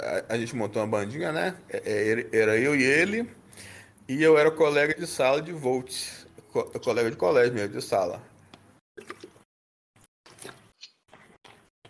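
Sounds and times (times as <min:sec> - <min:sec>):
speech: 0:00.2 - 0:08.3
person drinking water with short wet gulps and swallowing: 0:09.0 - 0:09.5, 0:10.3 - 0:11.8.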